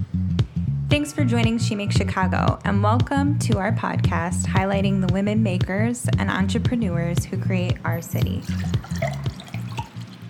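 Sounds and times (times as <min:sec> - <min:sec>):
speech: 0:01.0 - 0:09.1
wine pouring into a glass: 0:07.8 - 0:10.2.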